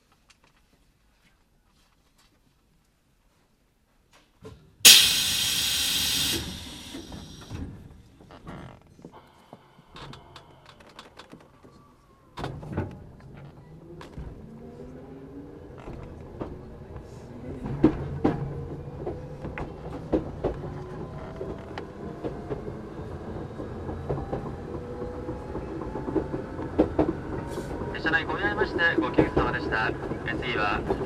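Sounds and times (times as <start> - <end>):
pneumatic hiss of train doors sliding shut: 4.9 - 7.6
low mechanical rumble, clanks and thud of train starting to move: 4.9 - 8.3, 12.5 - 31.0
speech: 28.1 - 31.0.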